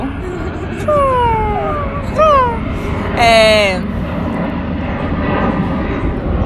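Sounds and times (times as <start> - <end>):
laughter: 0.0 - 3.2
airplane engine roar passing overhead: 0.0 - 6.4.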